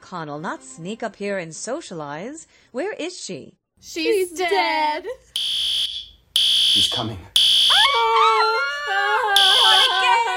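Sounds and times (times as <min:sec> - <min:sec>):
speech: 0:00.1 - 0:05.7, 0:06.8 - 0:07.4
fire alarm ringing: 0:05.4 - 0:07.8, 0:09.4 - 0:10.3
wavering howling wail: 0:07.7 - 0:10.3.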